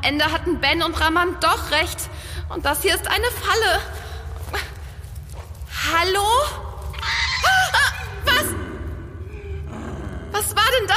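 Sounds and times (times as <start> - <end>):
speech: 0.0 - 4.7, 5.9 - 7.6, 10.4 - 10.9
low rumbling growl: 8.2 - 10.9.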